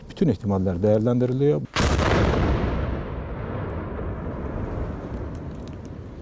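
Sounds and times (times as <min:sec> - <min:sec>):
speech: 0:00.2 - 0:02.6
powerful explosion at a fireworks factory: 0:01.8 - 0:06.2.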